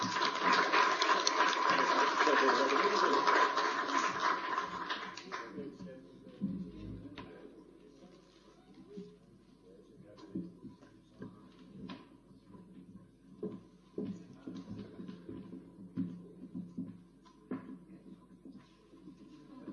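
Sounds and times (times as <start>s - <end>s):
room full of people applauding in council chamber: 0.0s - 5.7s.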